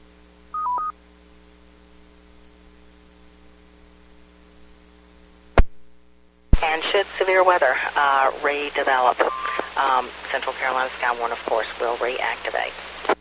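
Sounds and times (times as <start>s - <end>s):
steady electrical hum: 0.0s - 13.1s
amateur radio repeater control tones: 6.6s - 13.1s
speech: 6.8s - 12.9s.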